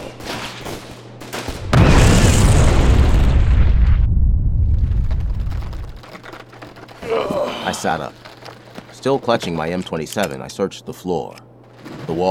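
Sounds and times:
powerful explosion blast with roaring rumble: 1.5s - 6.0s
speech: 7.8s - 8.3s, 9.0s - 11.4s, 12.1s - 12.3s.

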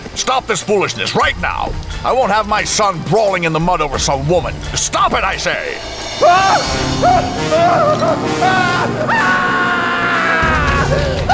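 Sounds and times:
dense rumbling background: 0.0s - 9.2s
speech: 0.2s - 9.6s
person screaming anguished cries from outside a circle of wagons: 6.2s - 11.3s.

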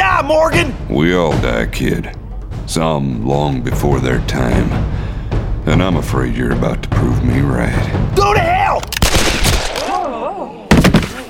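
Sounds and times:
speech: 0.3s - 5.1s, 5.7s - 9.0s
gunshots fired in a close-range showdown: 8.8s - 10.1s.

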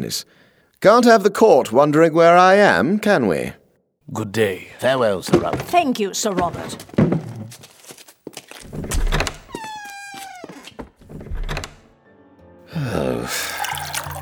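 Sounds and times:
speech: 0.0s - 7.1s
drink pouring into a glass: 13.0s - 14.2s.

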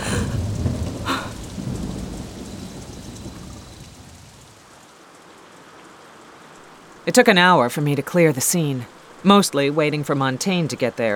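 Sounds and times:
low thunder rumble: 0.0s - 4.8s
steady rain hissing: 0.0s - 11.1s
speech: 7.1s - 11.1s.

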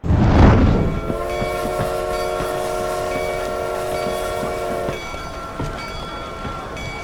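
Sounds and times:
train rumbling along railroad tracks: 0.0s - 7.0s
train horn blaring: 0.6s - 6.8s.

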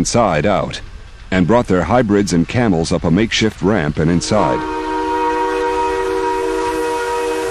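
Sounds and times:
speech: 0.0s - 4.8s
steam train engine rumble as the train gets rolling: 0.0s - 7.4s
steam train whistle: 4.2s - 7.4s.

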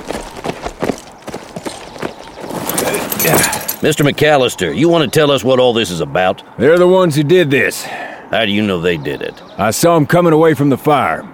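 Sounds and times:
several horses' hooves clip-clopping on hard ground into a yard: 0.0s - 4.2s
speech: 3.2s - 11.3s.

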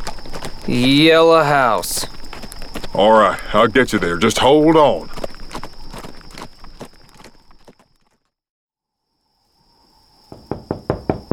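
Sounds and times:
rhythmic clopping: 0.0s - 8.1s
speech: 0.7s - 2.2s, 2.9s - 5.2s
someone rapping firmly on a wooden door: 10.3s - 11.3s.

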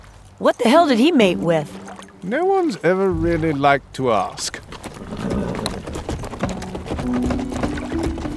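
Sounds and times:
speech: 0.4s - 4.7s, 7.1s - 7.3s
ridden horses' hooves clopping across a heavy wooden castle drawbridge over a moat: 4.6s - 8.3s.

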